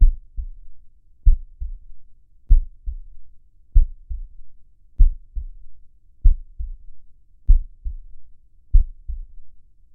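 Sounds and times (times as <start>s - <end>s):
slow heartbeat: 0.0s - 3.2s, 3.8s - 4.4s, 5.0s - 6.9s, 7.5s - 9.4s.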